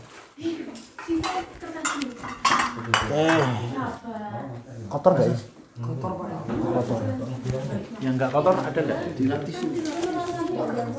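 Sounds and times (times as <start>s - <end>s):
speech: 0.4s - 10.9s
empty ceramic plates clattering as they are stacked: 0.8s - 3.7s.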